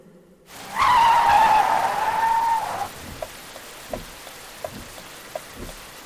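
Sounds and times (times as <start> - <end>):
car tires screeching as it skids to a halt: 0.5 - 4.2
light patters of rain: 0.5 - 6.0.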